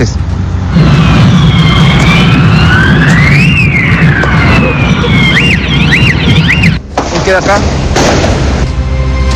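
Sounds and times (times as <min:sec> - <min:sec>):
speech: 0:00.0 - 0:00.2, 0:07.3 - 0:08.1
firecrackers and fireworks exploding: 0:00.8 - 0:08.5.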